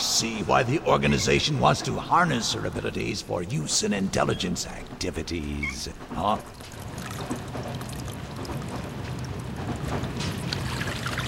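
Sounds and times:
speech: 0:00.2 - 0:07.4
water leaking from a capsule valve: 0:06.4 - 0:09.5, 0:10.4 - 0:11.2.

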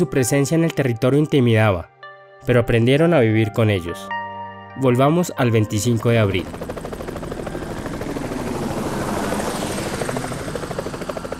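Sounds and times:
speech: 0:00.0 - 0:04.2, 0:04.8 - 0:06.8
helicopter flying overhead: 0:05.4 - 0:11.3.

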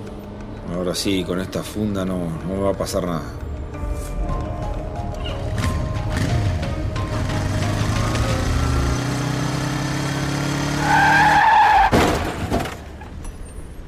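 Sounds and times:
speech: 0:00.7 - 0:03.5
motorcycle engine roaring: 0:05.1 - 0:11.4
motorcycle tires squealing in a sharp skid: 0:10.5 - 0:13.1
crash impacts of a motorcycle crash: 0:11.8 - 0:13.1.

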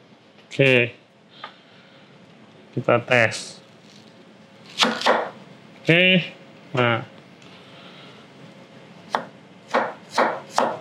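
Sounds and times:
speech: 0:00.5 - 0:01.5, 0:02.8 - 0:03.6, 0:05.9 - 0:07.1
knife chopping through food: 0:04.7 - 0:05.4, 0:09.1 - 0:10.7.

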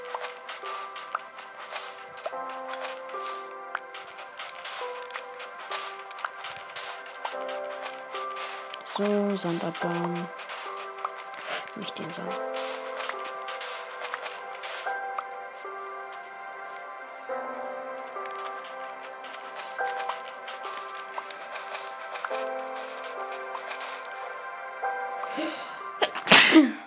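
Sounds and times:
melodic music: 0:00.0 - 0:26.8
speech: 0:09.0 - 0:10.4, 0:11.8 - 0:12.7
person sneezing: 0:26.0 - 0:26.8.

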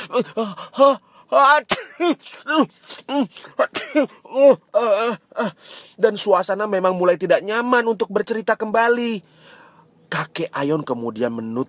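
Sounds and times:
speech: 0:00.1 - 0:11.6
several children sneezing from smoke in a house: 0:01.6 - 0:04.2.

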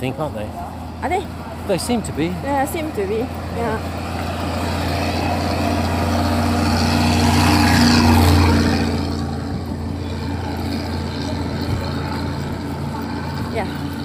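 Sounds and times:
speech: 0:00.0 - 0:04.1
heavy lorry engine rumbling past: 0:00.0 - 0:14.0.

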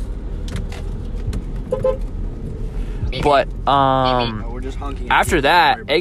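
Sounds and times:
road noise: 0:00.0 - 0:05.9
steady traffic rumble: 0:00.0 - 0:05.9
car horn toot: 0:01.7 - 0:02.1
speech: 0:03.2 - 0:05.9.

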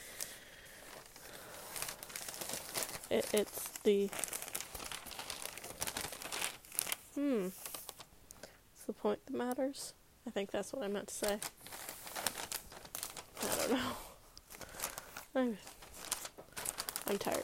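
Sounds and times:
paper rustling and crinkling: 0:00.1 - 0:08.1, 0:11.2 - 0:17.4
speech: 0:03.1 - 0:04.3, 0:07.2 - 0:07.7, 0:08.9 - 0:11.6, 0:13.7 - 0:14.0, 0:15.4 - 0:15.8, 0:17.1 - 0:17.4
person murmuring: 0:07.2 - 0:07.6.

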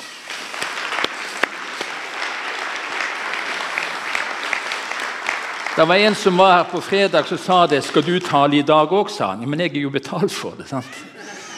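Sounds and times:
room full of people applauding: 0:00.0 - 0:09.0
speech: 0:05.8 - 0:11.2.

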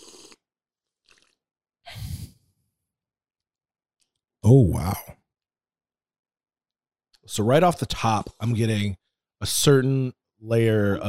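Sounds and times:
person slurping a hot drink: 0:00.0 - 0:00.4, 0:01.0 - 0:01.4
speech: 0:04.5 - 0:05.2, 0:07.2 - 0:11.0.

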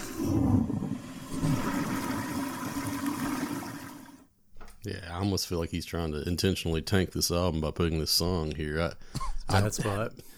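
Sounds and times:
toilet flushing: 0:00.0 - 0:04.3
speech: 0:04.8 - 0:10.3
laughter: 0:09.2 - 0:10.3.

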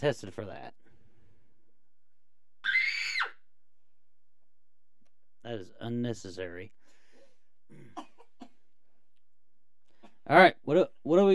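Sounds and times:
speech: 0:00.0 - 0:00.8, 0:05.6 - 0:06.8, 0:10.3 - 0:11.3
person coughing: 0:07.7 - 0:08.6.

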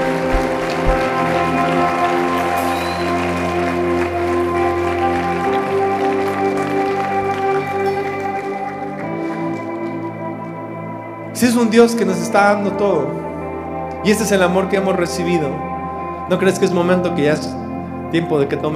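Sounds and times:
audience applause: 0:00.0 - 0:10.1
sustained droning musical chords: 0:00.0 - 0:18.7
speech: 0:11.6 - 0:13.3, 0:14.0 - 0:15.7, 0:16.3 - 0:18.7.

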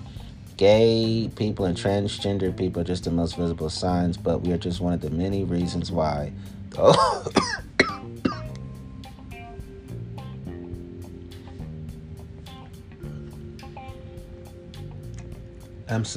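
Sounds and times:
musical backing with a regular beat: 0:00.0 - 0:16.1
speech: 0:00.6 - 0:07.7, 0:15.9 - 0:16.1
person coughing: 0:06.8 - 0:08.5.

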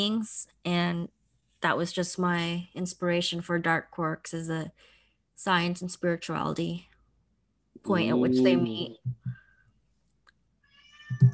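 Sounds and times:
speech: 0:00.0 - 0:06.9, 0:07.8 - 0:09.2, 0:11.2 - 0:11.3
cat meowing: 0:10.7 - 0:11.3.

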